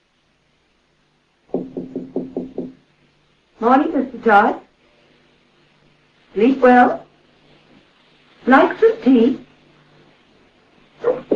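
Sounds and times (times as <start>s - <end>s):
knocking on a door: 1.5s - 2.8s
speech: 3.6s - 4.6s, 6.3s - 7.0s, 8.4s - 9.4s.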